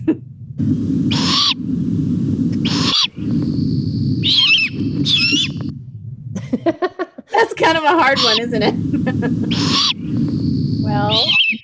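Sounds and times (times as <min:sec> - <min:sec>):
steady low rumble of noise: 0:00.0 - 0:11.6
young bird giving harsh raspy calls: 0:01.0 - 0:01.8, 0:02.5 - 0:05.7, 0:08.0 - 0:11.6
laughter: 0:06.4 - 0:07.5, 0:08.6 - 0:09.6
speech: 0:07.6 - 0:10.3, 0:10.9 - 0:11.4.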